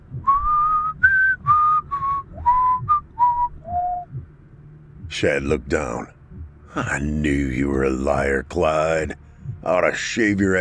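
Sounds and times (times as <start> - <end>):
faint low rumble: 0.0 - 10.5
man whistling a familiar tune: 0.2 - 4.2
speech: 5.1 - 6.2, 6.8 - 10.5.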